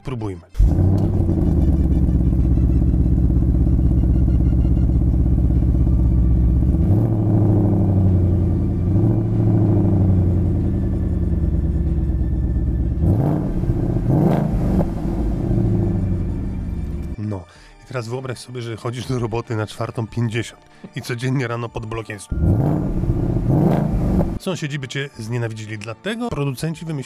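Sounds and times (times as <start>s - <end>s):
speech: 0.1s - 0.9s, 18.0s - 27.0s
loud car engine in normal start mode idling and revving: 0.6s - 17.2s, 22.3s - 24.4s.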